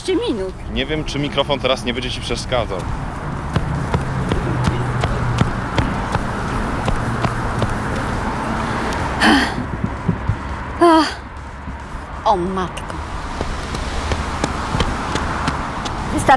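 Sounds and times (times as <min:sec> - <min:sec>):
speech: 0:00.0 - 0:03.1, 0:12.3 - 0:13.1, 0:16.2 - 0:16.3
woman's running footfalls: 0:00.5 - 0:16.3
woman panting while running: 0:09.2 - 0:09.7, 0:10.8 - 0:11.3.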